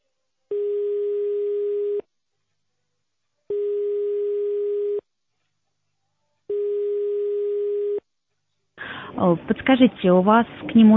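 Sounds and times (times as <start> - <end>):
telephone ringback tone while dialing: 0.5 - 2.0, 3.5 - 5.0, 6.5 - 8.0
speech: 9.2 - 10.9.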